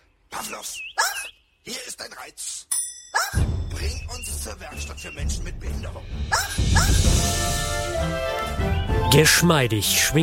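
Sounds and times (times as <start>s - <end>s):
speech: 0.4s - 10.2s
huge calf-sized dog barking: 6.3s - 7.0s.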